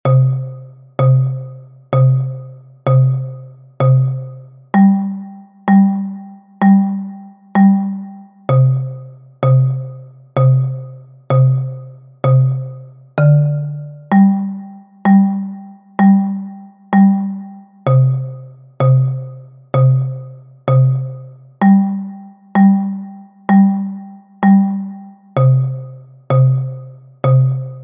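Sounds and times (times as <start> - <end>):
bass xylophone: 0.0 - 27.8.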